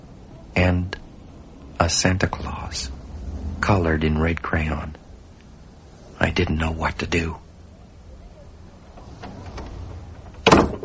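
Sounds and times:
low quiet rumbling: 0:00.0 - 0:10.8
speech: 0:00.7 - 0:01.0, 0:01.9 - 0:03.0, 0:03.6 - 0:05.0, 0:06.2 - 0:07.4
storm porch door swinging shut with a thud: 0:09.0 - 0:10.8.

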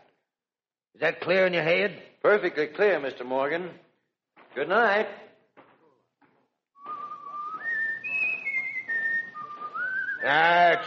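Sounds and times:
speech: 0:01.0 - 0:03.8, 0:04.5 - 0:05.2, 0:10.2 - 0:10.8
person whistling a tune in long held notes: 0:06.8 - 0:10.8.

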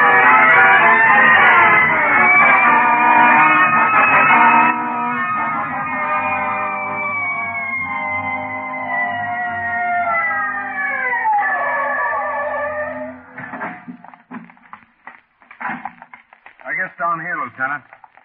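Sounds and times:
police car siren wailing: 0:00.0 - 0:14.0.

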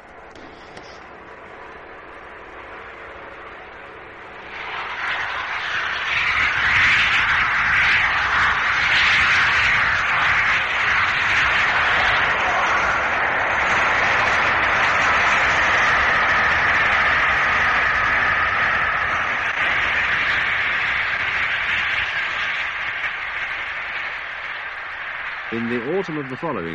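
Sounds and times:
steam locomotive passing at 92 miles an hour: 0:00.0 - 0:26.7
speech: 0:26.0 - 0:26.7.

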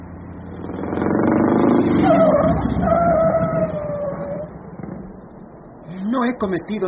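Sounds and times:
old smoking car engine rumbling as it pulls over to the roadside: 0:00.0 - 0:06.8
thin wavering high-pitched squeal: 0:00.5 - 0:05.1
speech: 0:06.2 - 0:06.8.

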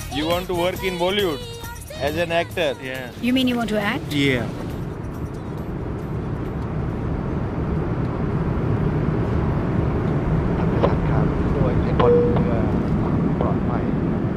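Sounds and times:
speech: 0:00.2 - 0:04.6
airplane cabin roar on a flight from Bangkok to Mumbai: 0:03.0 - 0:14.3
airplane engine drone: 0:03.2 - 0:14.3
brief clinks and tones in airplane cabin: 0:12.0 - 0:13.0.

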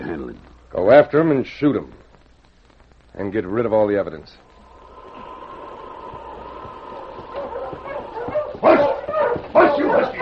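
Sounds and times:
speech: 0:00.2 - 0:02.0, 0:03.2 - 0:04.4
sled dog team barking and yipping along a canyon trail: 0:07.0 - 0:10.2.

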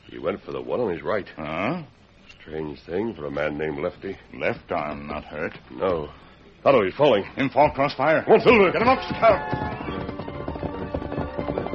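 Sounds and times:
speech: 0:00.2 - 0:09.8
horses galloping: 0:07.7 - 0:11.7.

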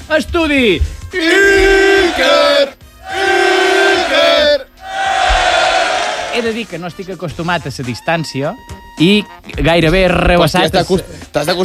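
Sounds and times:
speech: 0:00.1 - 0:02.8, 0:06.4 - 0:11.6
group of voices cheering and hollering in a radio studio: 0:01.2 - 0:06.5.

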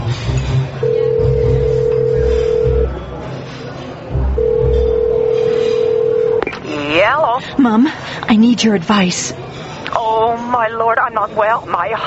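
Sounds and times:
faint murmur: 0:00.0 - 0:12.0
payphone ringback tone over the line: 0:00.8 - 0:03.0, 0:04.4 - 0:06.6
speech: 0:07.6 - 0:09.4, 0:10.6 - 0:12.0.

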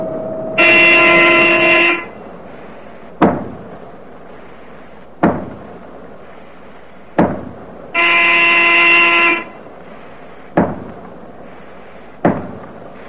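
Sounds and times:
submarine diving alarm buzzing klaxon blast: 0:00.0 - 0:02.4, 0:07.9 - 0:09.6
heavy metallic clanks: 0:00.0 - 0:08.6, 0:09.5 - 0:13.0.

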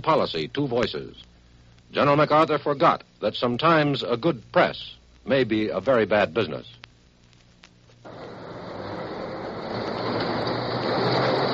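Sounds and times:
speech: 0:00.0 - 0:01.3, 0:01.9 - 0:06.8
underground subway car running on rails: 0:08.1 - 0:11.5.

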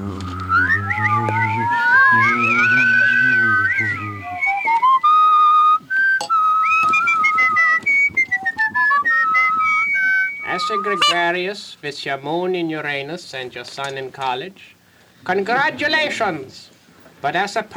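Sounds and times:
low humming accompaniment: 0:00.0 - 0:11.2
person whistling a wavering melodic tune: 0:00.0 - 0:11.2
speech: 0:11.2 - 0:17.7.

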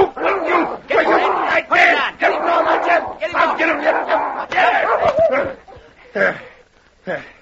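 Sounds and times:
big gray dog snarling, barking and yelping in an attack: 0:00.0 - 0:01.6, 0:02.2 - 0:05.6.

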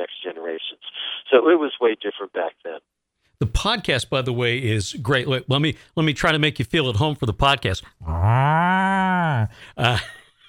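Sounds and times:
speech: 0:00.0 - 0:10.2
person imitating a cow mooing: 0:08.0 - 0:09.6.

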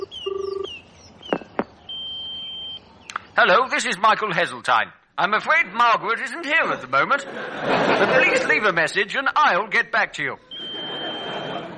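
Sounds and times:
long steady high-pitched electronic tone: 0:00.0 - 0:00.7
touch-tone telephone beeps: 0:00.0 - 0:00.7, 0:10.4 - 0:11.7
sharp clicks: 0:03.1 - 0:03.3
speech: 0:03.4 - 0:10.5
laughter: 0:06.6 - 0:08.8, 0:10.4 - 0:11.7.

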